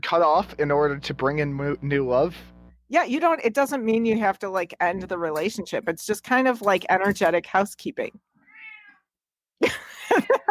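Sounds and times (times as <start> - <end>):
speech: 0.0 - 8.3
cat meowing: 8.4 - 9.1
laughter: 9.6 - 10.4.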